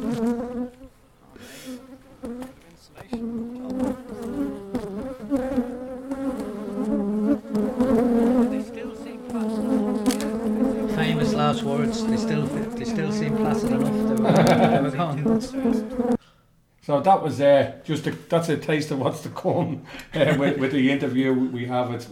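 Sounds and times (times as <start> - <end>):
swarm of hornets buzzing: 0.0 - 0.8, 1.4 - 16.2
laughter: 12.4 - 15.8, 19.6 - 21.0
speech: 16.9 - 22.1.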